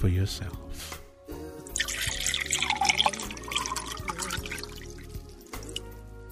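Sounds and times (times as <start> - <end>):
wine pouring from a freshly opened bottle into a glass: 1.7 - 5.9.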